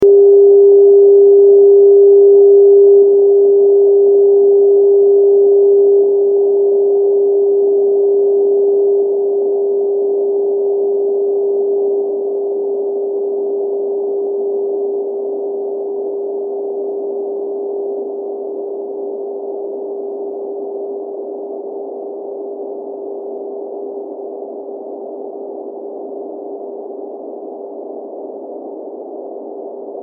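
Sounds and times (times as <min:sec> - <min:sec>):
noise: 0:00.0 - 0:30.0.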